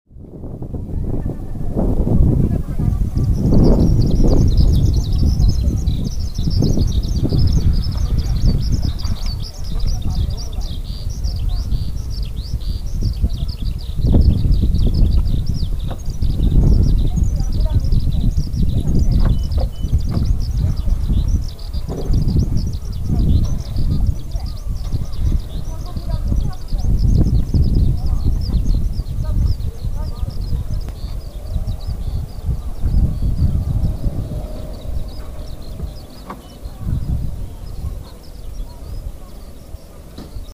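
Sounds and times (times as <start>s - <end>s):
skylark singing: 1.1s - 40.5s.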